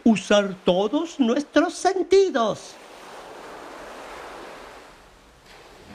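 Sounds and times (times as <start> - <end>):
ocean waves breaking on shore: 0.0 - 5.9
speech: 0.1 - 2.8
breezy wind rushing over the microphone: 2.8 - 5.9.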